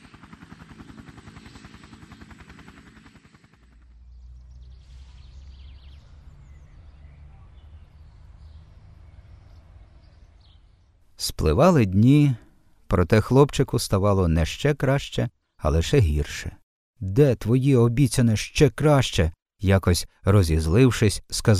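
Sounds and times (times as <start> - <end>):
helicopter roaring with rapid chopping rotor pulses: 0.0 - 7.0
steady low helicopter engine drone: 2.8 - 11.0
faint chirps: 4.2 - 11.0
speech: 11.2 - 21.5.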